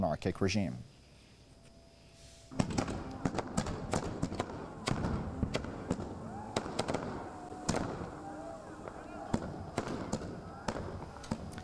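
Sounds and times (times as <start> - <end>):
celebratory fireworks exploding in the sky in Iran: 2.5 - 11.6
faint voices: 4.6 - 11.6.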